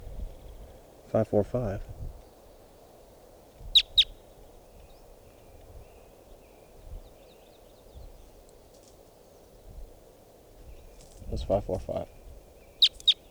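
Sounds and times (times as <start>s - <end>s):
low steady hiss: 0.0s - 13.3s
speech: 1.1s - 2.0s, 11.5s - 12.2s
faint scattered chirps: 3.6s - 8.4s, 10.6s - 13.3s.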